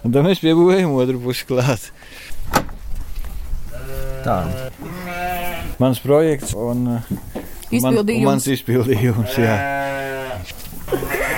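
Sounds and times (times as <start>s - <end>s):
speech: 0.0s - 2.6s, 3.9s - 4.9s, 5.8s - 11.2s
low shuffling noise: 1.1s - 7.8s, 10.4s - 11.1s
sheep and newborn lambs bleating inside a barn: 3.7s - 5.8s, 9.0s - 11.3s
laughter: 10.8s - 11.3s.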